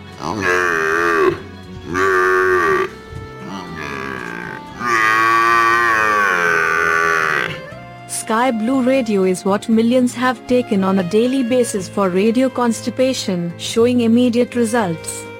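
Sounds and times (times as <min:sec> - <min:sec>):
water buffalo bellowing: 0:00.0 - 0:07.8
speech: 0:00.2 - 0:00.6, 0:08.4 - 0:15.2.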